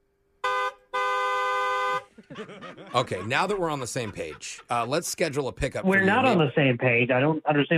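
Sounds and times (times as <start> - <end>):
car horn honking: 0.4 - 2.2, 3.1 - 4.1
laughter: 2.1 - 6.4
speech: 2.3 - 7.7.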